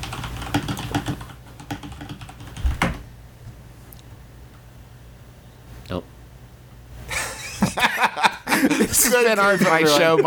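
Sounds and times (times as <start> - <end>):
typing on a computer keyboard: 0.0 - 2.9
speech: 5.9 - 6.1, 8.9 - 10.2
laughter: 7.1 - 10.2.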